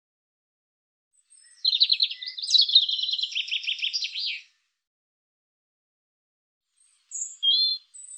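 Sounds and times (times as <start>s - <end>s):
European robin singing buzzy trilled notes: 1.2s - 4.6s, 6.8s - 8.1s.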